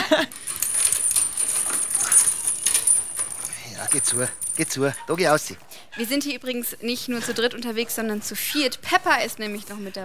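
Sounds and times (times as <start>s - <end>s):
metal chain rattling as it is pulled out while mooring a boat: 0.1s - 5.3s
speech: 3.9s - 10.0s.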